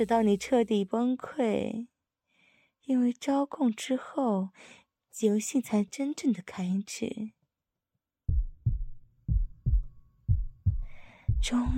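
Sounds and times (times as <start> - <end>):
speech: 0.0 - 1.9, 2.9 - 7.4, 11.4 - 11.7
heartbeat thudding: 8.3 - 11.7.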